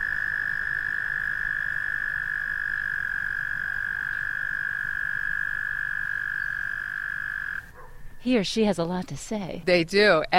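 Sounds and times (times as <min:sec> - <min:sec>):
frog trilling: 0:00.0 - 0:07.7
speech: 0:08.2 - 0:10.3.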